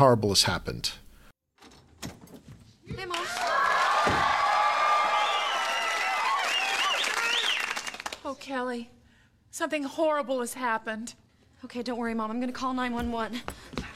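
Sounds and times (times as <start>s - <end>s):
speech: 0.0s - 1.0s, 8.3s - 13.9s
door clicking and thumping open as someone comes in: 1.6s - 2.7s
studio audience applauding and whooping cheers: 3.0s - 8.2s.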